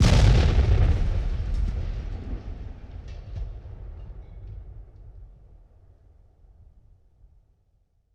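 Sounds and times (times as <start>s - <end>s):
WWII combat explosion: 0.0s - 5.4s.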